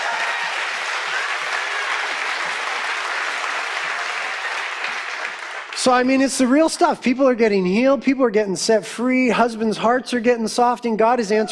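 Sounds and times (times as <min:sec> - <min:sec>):
large audience applauding: 0:00.0 - 0:06.2
speech: 0:05.8 - 0:11.5.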